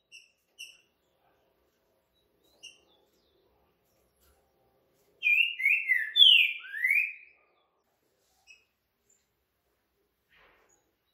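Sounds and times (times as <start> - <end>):
green-winged saltator whistling four slurred notes: 5.2 - 7.3.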